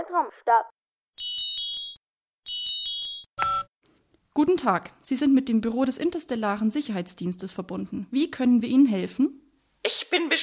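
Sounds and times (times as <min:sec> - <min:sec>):
speech: 0:00.1 - 0:01.3, 0:04.4 - 0:10.4
incoming call signal of bright electronic chiming tones: 0:01.2 - 0:03.7.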